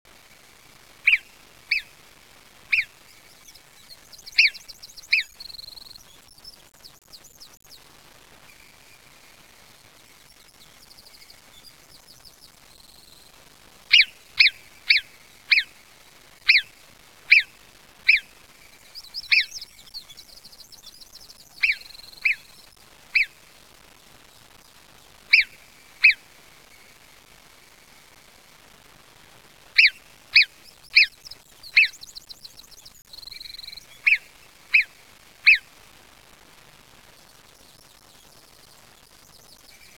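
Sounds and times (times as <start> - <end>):
marmot calling: 1.0 - 1.9, 2.7 - 5.7, 13.9 - 15.7, 16.4 - 18.3, 18.9 - 20.4, 21.5 - 23.4, 25.3 - 26.8, 29.8 - 32.6, 33.2 - 35.7.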